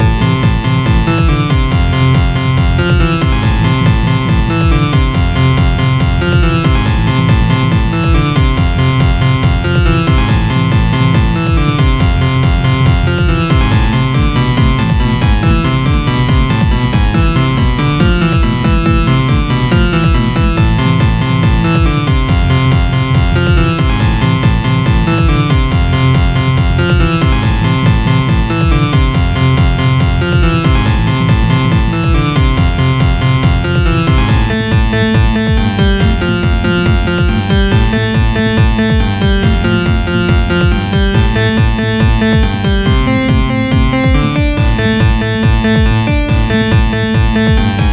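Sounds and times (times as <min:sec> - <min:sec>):
loopable music: 0:00.0 - 0:47.9.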